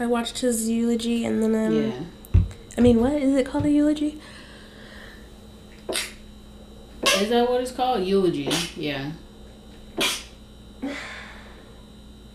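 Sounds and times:
speech: 0.0 - 2.2, 2.8 - 4.4, 7.2 - 9.2
faint steady hum in a quiet room: 0.0 - 12.3
person sneezing: 5.9 - 6.2, 8.5 - 8.8, 10.0 - 11.1.

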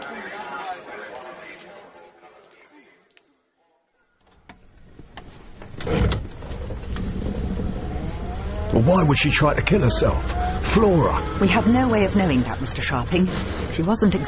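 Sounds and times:
chatter: 0.0 - 4.3, 7.0 - 14.2
steady mechanical whir inside a car: 5.8 - 14.2
speech: 8.8 - 14.2.

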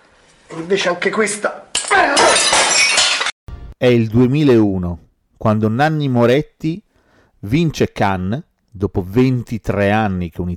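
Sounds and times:
speech: 0.5 - 2.5, 3.8 - 6.8, 7.4 - 10.5
ceramic baking dish shattering: 1.7 - 3.4.

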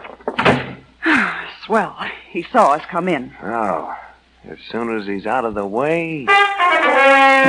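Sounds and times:
door being opened and pushed shut: 0.3 - 0.9
speech: 1.7 - 7.4.

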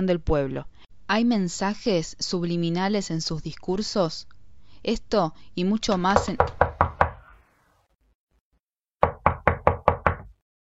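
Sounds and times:
speech: 0.0 - 6.6
knocking on a door: 5.9 - 7.2, 9.0 - 10.4.

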